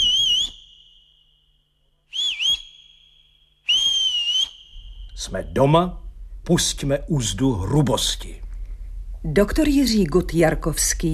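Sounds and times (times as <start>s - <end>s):
person whistling: 0.0s - 1.5s, 2.1s - 5.2s
speech: 5.2s - 8.4s, 9.2s - 11.1s.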